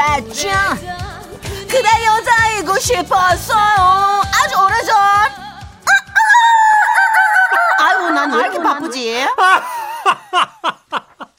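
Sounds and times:
speech: 0.2 - 5.4
person imitating rooster crowing: 5.8 - 9.7
laughter: 7.1 - 11.3.

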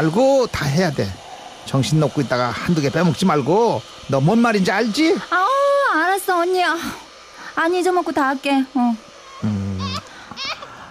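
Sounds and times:
speech: 0.0 - 7.0, 7.6 - 9.6
baby crying in quavering wails: 9.2 - 10.8.

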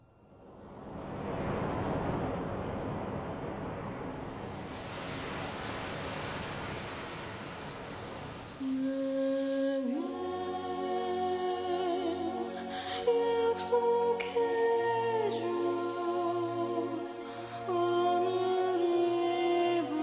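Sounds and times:
ocean waves washing in and out: 0.2 - 20.0.

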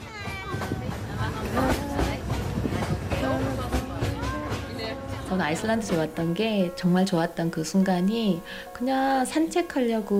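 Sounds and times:
train rumbling on rails to Iguazu Falls: 0.0 - 7.8
several people chattering on a train: 0.0 - 10.1
several people singing on a train: 1.1 - 6.3
speech: 5.3 - 10.1.

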